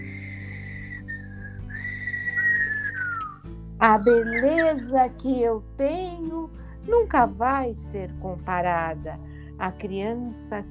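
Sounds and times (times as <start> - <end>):
person whistling a short melodic phrase: 0.0 - 3.4
speech: 3.8 - 10.6.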